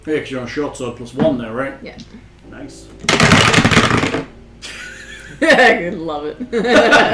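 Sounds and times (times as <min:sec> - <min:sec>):
speech: 0:00.0 - 0:04.3, 0:05.3 - 0:07.1
two six-sided dice rolling on a table: 0:03.1 - 0:04.3
laughter: 0:04.6 - 0:07.1.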